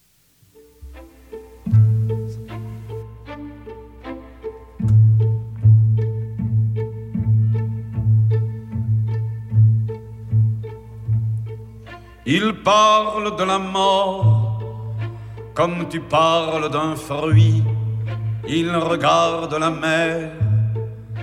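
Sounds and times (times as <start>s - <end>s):
slow French chanson with deep steady bass notes: 0.7s - 21.2s
speech: 12.3s - 14.3s, 15.6s - 17.7s, 18.5s - 20.4s.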